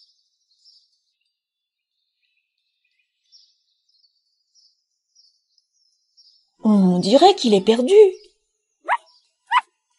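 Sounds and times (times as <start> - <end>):
speech: 6.6 - 8.2
small dog yapping: 8.9 - 9.7.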